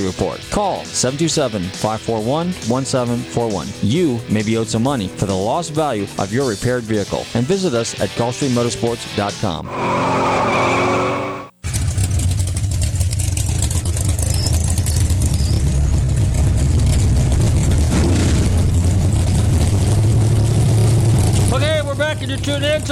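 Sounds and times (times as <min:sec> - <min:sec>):
speech: 0:00.1 - 0:10.6
drag racing car tire squeal: 0:09.6 - 0:12.1, 0:14.0 - 0:16.3
drag racing car engines roaring at a drag strip: 0:09.6 - 0:22.9.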